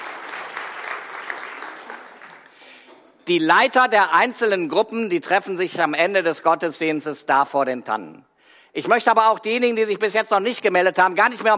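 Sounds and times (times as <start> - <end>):
crowd applauding in a church during a service: 0.0 - 2.8
speech: 3.3 - 11.5.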